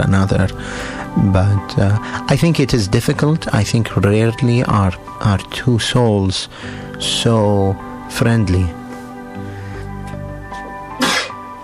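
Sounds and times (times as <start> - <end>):
speech: 0.0 - 8.8
person sneezing: 11.0 - 11.4.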